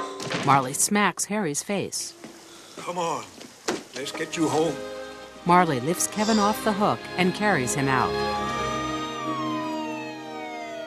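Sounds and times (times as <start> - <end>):
speech: 0.4 - 3.4, 4.0 - 8.6
police car siren wailing: 7.9 - 10.8.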